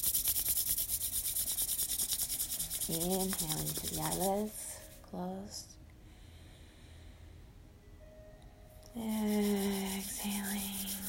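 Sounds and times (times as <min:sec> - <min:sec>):
hands rubbed briskly together to warm them: 0:00.0 - 0:05.0, 0:09.1 - 0:11.0
speech: 0:02.9 - 0:05.7, 0:09.0 - 0:10.8.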